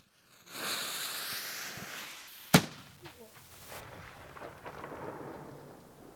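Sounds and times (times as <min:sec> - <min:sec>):
faint outdoor hiss: 0:00.0 - 0:06.1
black powder arquebus gunshot with echo: 0:02.5 - 0:06.1.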